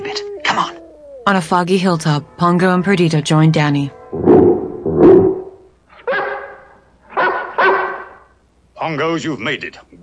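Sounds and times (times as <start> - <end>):
speech: 1.3 - 4.2, 8.9 - 10.0
Great Dane barking with deep booming woofs: 5.0 - 8.3.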